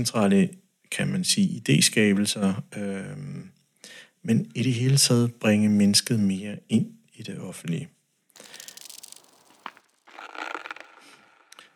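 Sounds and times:
speech: 0.0s - 8.6s
swallow-like click: 8.4s - 11.6s
sipping from a glass of water: 8.4s - 11.7s.

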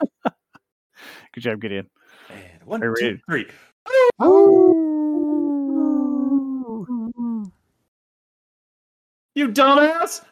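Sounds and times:
speech: 1.2s - 4.8s, 9.6s - 10.3s
person howling in imitation of a dog: 3.9s - 7.4s.

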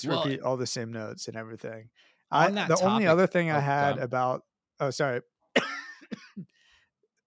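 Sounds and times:
speech: 0.0s - 6.6s
person coughing harshly: 5.6s - 6.5s.

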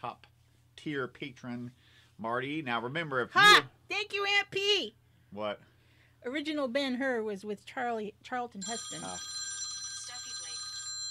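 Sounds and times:
speech: 0.0s - 9.4s
phone ringing with high electronic trill: 8.6s - 11.0s.

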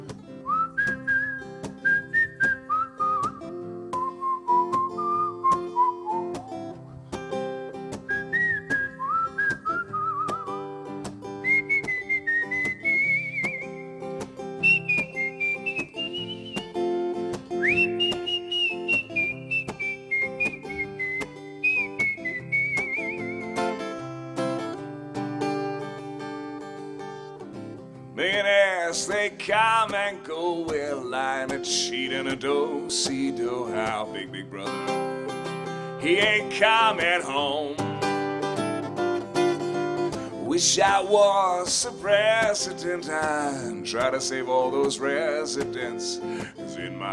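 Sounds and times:
plucked or strummed accompaniment: 0.0s - 47.1s
person whistling a wandering tuneful melody: 0.4s - 6.9s, 8.0s - 10.7s, 11.4s - 16.8s, 17.5s - 23.8s
speech: 28.9s - 35.1s, 36.0s - 37.6s, 40.6s - 47.1s.

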